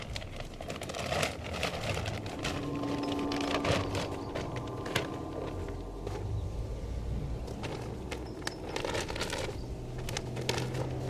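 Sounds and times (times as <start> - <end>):
low rumble: 0.0 - 9.5
yard work crunching and scraping: 0.0 - 11.0
soft sustained slow meditative synth tones: 2.2 - 7.4.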